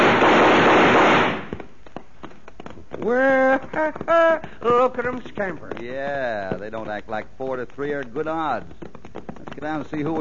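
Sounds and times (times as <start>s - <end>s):
scattered volley of gunshots fired over people's heads: 0.0s - 1.6s
speech: 3.0s - 8.9s, 9.6s - 10.1s.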